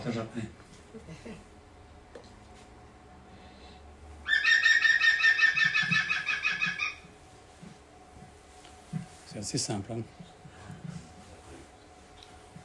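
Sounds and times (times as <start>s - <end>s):
speech: 0.0s - 1.5s, 9.5s - 10.3s
woodpecker call: 4.3s - 7.1s.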